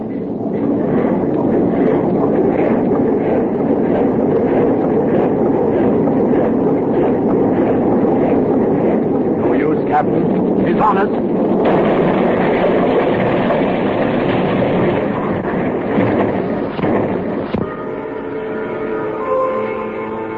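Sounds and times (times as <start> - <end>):
heavy ship engines running full steam astern: 0.0 - 20.3
ship hull striking an ice pack: 11.6 - 17.7.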